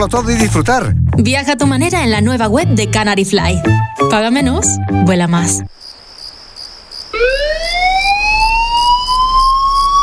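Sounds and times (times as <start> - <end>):
steady low rumble: 0.0 - 2.1
speech: 0.0 - 5.8
fire engine siren from the Tenerife fire service: 7.2 - 10.0.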